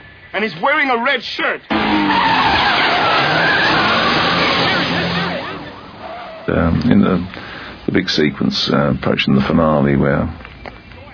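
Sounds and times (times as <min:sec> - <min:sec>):
speech: 0:00.3 - 0:02.4, 0:06.5 - 0:10.5
stolen car tires screeching: 0:01.7 - 0:08.0.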